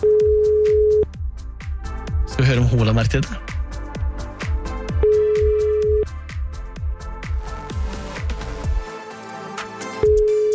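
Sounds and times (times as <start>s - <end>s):
telephone ringback tone from an outgoing phone call: 0.0s - 1.0s, 5.0s - 6.0s, 10.0s - 10.5s
busy rhythmic music: 0.0s - 10.5s
speech: 2.4s - 3.5s.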